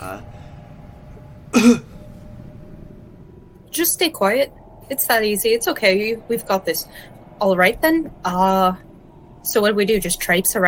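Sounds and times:
speech: 0:01.5 - 0:01.9, 0:03.7 - 0:10.6
deliberately faked throaty cough: 0:01.6 - 0:01.9.

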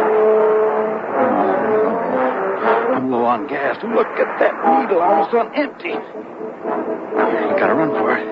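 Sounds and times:
car engine revving and accelerating: 0:00.0 - 0:06.2
speech: 0:03.4 - 0:08.2.

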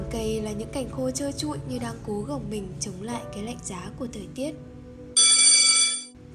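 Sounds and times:
speech: 0:00.1 - 0:04.7
electric school bell ringing for end of class: 0:05.2 - 0:06.2.

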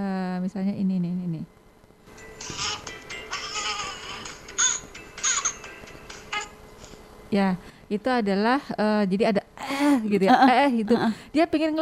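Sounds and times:
speech: 0:00.5 - 0:01.6, 0:07.3 - 0:11.8
young baby crying: 0:02.6 - 0:05.6.

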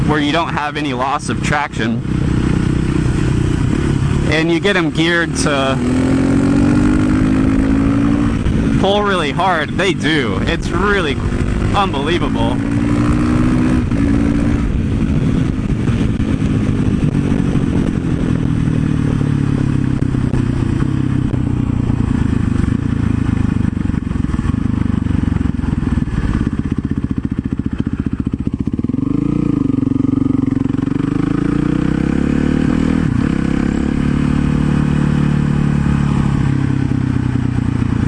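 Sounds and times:
supermoto motorcycle revving and riding on the street: 0:00.0 - 0:38.0
speech: 0:00.1 - 0:02.2, 0:04.3 - 0:06.1, 0:08.8 - 0:12.8.

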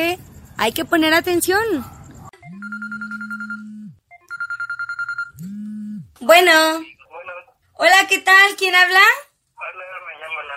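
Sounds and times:
speech: 0:00.1 - 0:02.0, 0:06.3 - 0:06.9, 0:07.8 - 0:09.8
electronic ringtone of an incoming telephone call: 0:02.4 - 0:05.4.

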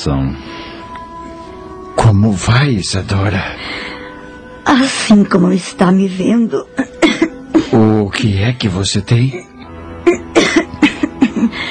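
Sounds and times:
speech: 0:00.0 - 0:00.7, 0:02.0 - 0:03.9, 0:04.7 - 0:10.2
weakened woman with persistent harsh coughing: 0:06.8 - 0:07.8, 0:10.0 - 0:11.6.

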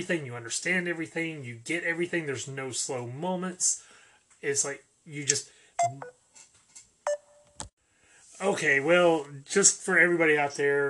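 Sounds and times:
speech: 0:00.0 - 0:06.2, 0:08.4 - 0:10.8
faint noise: 0:00.0 - 0:10.8
short electronic beeps and tones: 0:05.8 - 0:06.2, 0:07.1 - 0:07.5.

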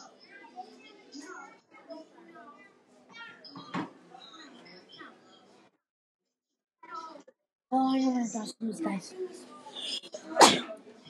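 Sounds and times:
speech: 0:07.7 - 0:09.6
sneeze into a face mask: 0:10.2 - 0:10.8.

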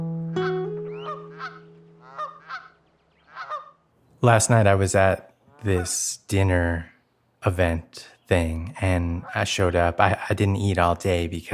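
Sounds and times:
Canada geese honking: 0:00.3 - 0:03.9, 0:05.5 - 0:06.1, 0:09.2 - 0:09.7
speech: 0:04.2 - 0:11.5.

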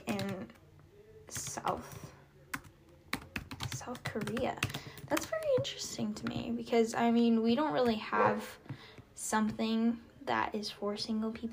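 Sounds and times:
typing on a computer keyboard: 0:00.0 - 0:00.6, 0:01.3 - 0:06.5
speech: 0:01.3 - 0:02.0, 0:03.9 - 0:08.6, 0:09.3 - 0:11.5.

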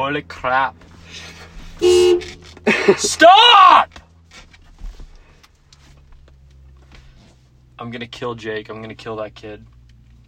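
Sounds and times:
speech: 0:00.1 - 0:04.0, 0:07.8 - 0:09.7
car horn honking outside: 0:01.8 - 0:03.6.

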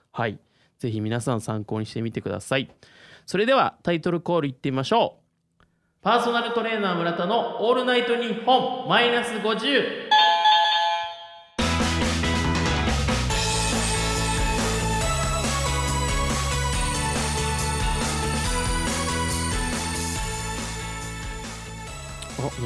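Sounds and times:
speech: 0:00.2 - 0:05.2, 0:06.0 - 0:10.2
doorbell ding-dong chime: 0:10.1 - 0:11.6
loud music: 0:11.6 - 0:22.6.

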